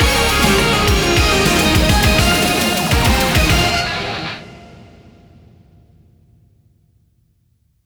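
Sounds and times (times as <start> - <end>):
big win ending jingle: 0.0 - 4.6.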